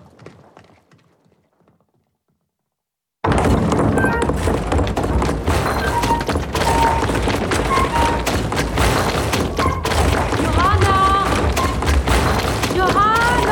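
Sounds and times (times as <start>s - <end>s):
stamping mill pounding rags: 3.2s - 13.5s
stamping mill machinery clattering: 3.3s - 13.5s.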